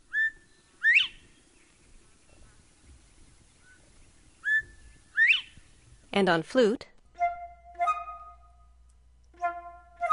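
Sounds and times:
Northern Bobwhite song: 0:00.1 - 0:01.2, 0:04.4 - 0:05.6, 0:07.2 - 0:08.6, 0:09.4 - 0:10.1
speech: 0:06.2 - 0:06.9.

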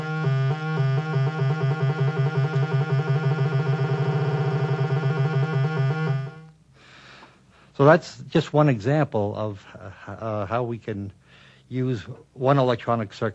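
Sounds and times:
synthesizer tone modulated by a square wave, buzzy trill: 0:00.0 - 0:06.5
speech: 0:07.8 - 0:13.3.

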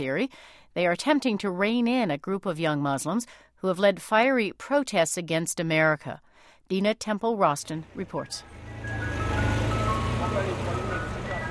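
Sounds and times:
speech: 0:00.0 - 0:09.1
ice cream truck jingle on city street in Jackson Heights Queens: 0:07.7 - 0:11.4
busy street noise in Jackson Heights Queens New York City: 0:07.8 - 0:11.4.

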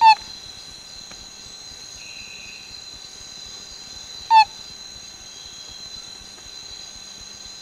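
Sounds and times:
male Borneo tree frog throaty chirps calling to attract a female: 0:00.0 - 0:00.2
steady high-pitched drone of night insects: 0:00.0 - 0:07.6.

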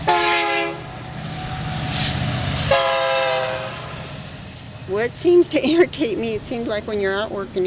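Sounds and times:
freight train horn blasts: 0:00.0 - 0:01.0, 0:02.7 - 0:04.1
freight train rumbling past: 0:00.0 - 0:07.6
speech: 0:05.0 - 0:07.6.

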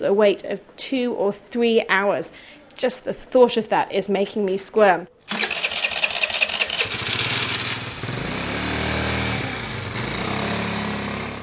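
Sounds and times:
speech: 0:00.0 - 0:05.4
motorbike engine during ride: 0:05.3 - 0:11.4.

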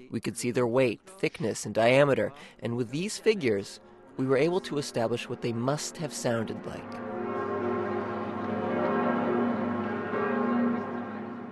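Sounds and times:
speech: 0:00.1 - 0:07.1
large newly made cathedral bells ringing in harmony: 0:03.8 - 0:11.5.

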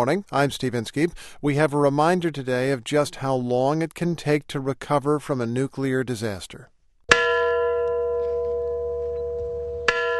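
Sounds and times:
speech: 0:00.0 - 0:06.7
large memorial bell tolling: 0:07.1 - 0:10.1.

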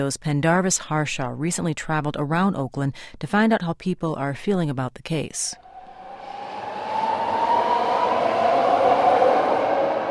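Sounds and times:
speech: 0:00.0 - 0:05.6
BART rapid transit train rumbling along the platform at Fruitvale station in Oakland: 0:05.6 - 0:10.0.

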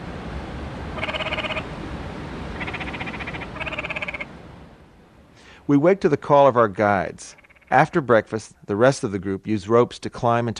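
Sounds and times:
steady wash of noise: 0:00.0 - 0:09.6
frogs calling at night at a camp along river rapids: 0:00.9 - 0:01.8, 0:02.5 - 0:04.4, 0:07.2 - 0:07.9
speech: 0:05.7 - 0:10.5.

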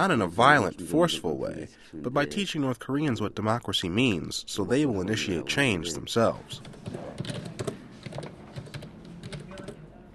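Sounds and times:
speech: 0:00.0 - 0:07.5
typing on a computer keyboard: 0:06.5 - 0:09.8.

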